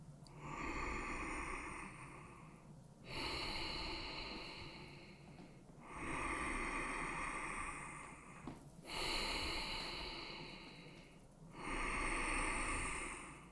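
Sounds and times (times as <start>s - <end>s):
slow deep breathing in and out through the nose: 0.3s - 13.4s.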